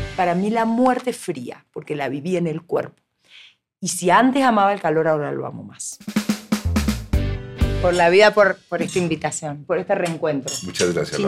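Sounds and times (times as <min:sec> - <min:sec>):
speech: 0:00.2 - 0:06.2, 0:07.8 - 0:11.2
glasses clinking in a toast: 0:10.5 - 0:11.2.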